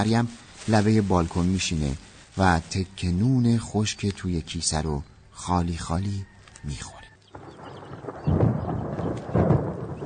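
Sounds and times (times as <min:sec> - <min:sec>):
speech: 0:00.0 - 0:07.0
hiss: 0:00.0 - 0:10.0
thunder rumbling: 0:07.3 - 0:10.0.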